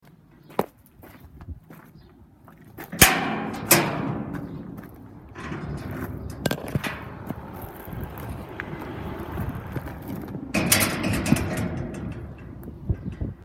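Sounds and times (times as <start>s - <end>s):
exit gate: 2.9s - 13.4s.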